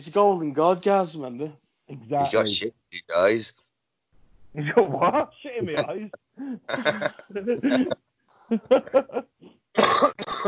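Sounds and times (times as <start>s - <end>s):
speech: 0.1s - 3.6s, 4.5s - 10.4s
laughter: 4.6s - 6.2s, 6.8s - 9.4s
harsh raspy smoker's cough: 5.7s - 8.0s, 9.8s - 10.4s.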